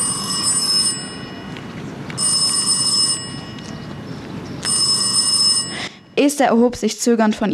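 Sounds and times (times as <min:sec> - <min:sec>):
bright electric telephone bell ringing: 0:00.0 - 0:06.4
speech: 0:06.2 - 0:07.5.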